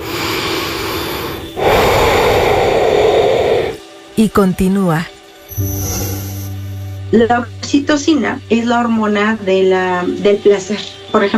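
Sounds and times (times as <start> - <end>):
deep breath: 0.0 - 3.8
speech: 4.2 - 6.0, 7.1 - 11.3.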